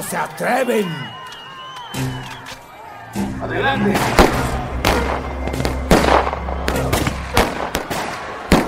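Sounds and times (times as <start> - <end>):
speech: 0.0 - 1.3, 1.9 - 2.3, 3.1 - 4.5
gunshots fired into the air to scare off a crowd: 3.9 - 8.6.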